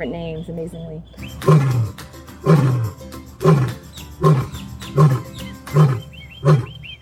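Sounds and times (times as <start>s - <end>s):
faint bird chirps: 0.0s - 1.9s, 3.8s - 7.0s
speech: 0.0s - 3.7s
cougar giving rough moaning vocalizations: 0.4s - 7.0s.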